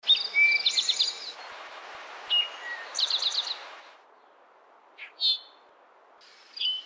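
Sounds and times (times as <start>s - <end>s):
eastern towhee calling: 0.0s - 1.4s, 2.3s - 3.7s, 5.0s - 5.6s, 6.5s - 6.8s.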